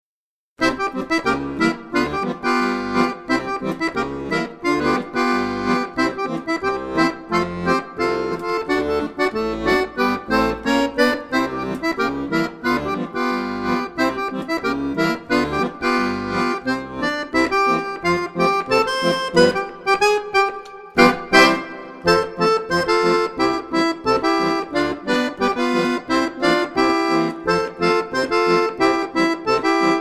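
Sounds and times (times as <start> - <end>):
ragtime music: 0.6 - 29.9.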